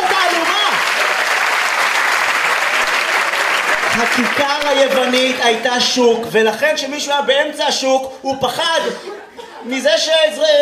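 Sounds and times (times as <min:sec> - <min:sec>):
audience applause: 0:00.0 - 0:06.0
speech: 0:04.0 - 0:10.6.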